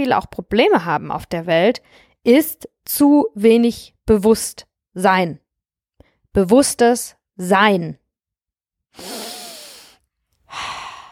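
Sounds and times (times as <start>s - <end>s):
speech: 0.0s - 5.4s, 6.3s - 8.0s, 9.0s - 9.2s
person breathing in and out: 9.0s - 11.0s.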